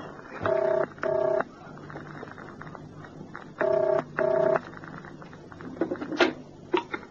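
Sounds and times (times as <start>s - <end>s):
telephone ringing in double bursts: 0.4s - 1.5s, 3.6s - 4.6s.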